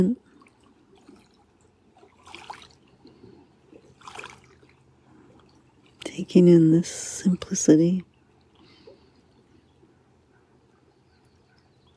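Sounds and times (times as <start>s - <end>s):
speech: 0.0s - 0.2s, 6.2s - 8.1s
water trickling over rocks: 0.0s - 8.8s.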